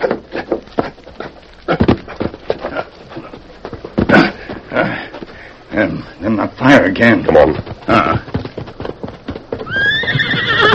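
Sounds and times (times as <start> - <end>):
horse hooves clip-clopping: 0.0 - 10.7
speech: 5.8 - 8.3
horse whinnying: 9.6 - 10.7.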